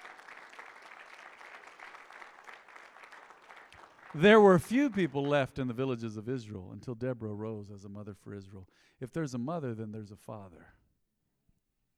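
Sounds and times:
audience clapping: 0:00.0 - 0:05.8
speech: 0:04.1 - 0:10.8.

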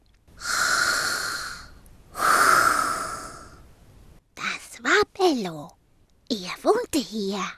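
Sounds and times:
deep breathing of a sleeping dog: 0:00.3 - 0:04.0
speech: 0:05.2 - 0:07.5.

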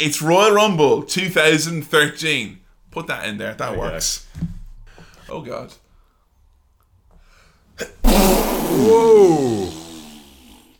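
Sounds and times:
speech: 0:00.0 - 0:04.6, 0:05.3 - 0:05.8, 0:07.8 - 0:09.8
person sneezing: 0:07.8 - 0:10.6.

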